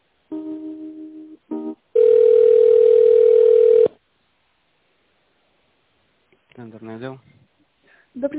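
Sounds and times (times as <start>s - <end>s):
continuous telephone ringing-back tone during a call transfer: 2.0s - 3.9s
speech: 7.0s - 7.3s, 8.2s - 8.3s.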